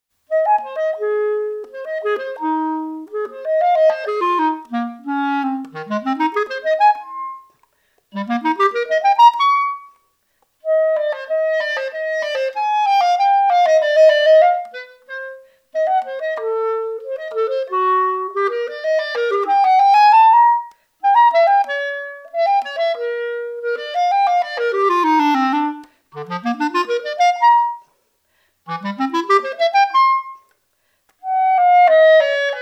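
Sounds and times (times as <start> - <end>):
clarinet: 0.2 - 32.5.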